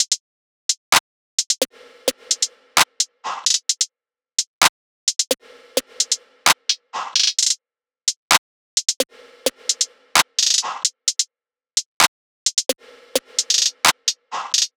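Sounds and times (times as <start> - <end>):
beat loop at 130 BPM: 1.5 - 3.8, 5.1 - 7.6, 8.3 - 11.2, 11.9 - 14.7.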